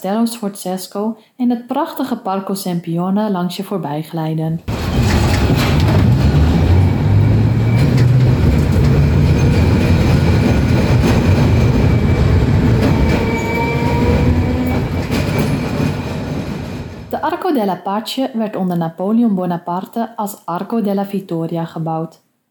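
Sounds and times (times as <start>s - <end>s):
speech: 0.0s - 5.2s, 17.6s - 22.2s
faint metallic whines and clatter over tram tracks: 4.7s - 17.1s
tram rolling along city rails in Milan: 4.7s - 17.2s.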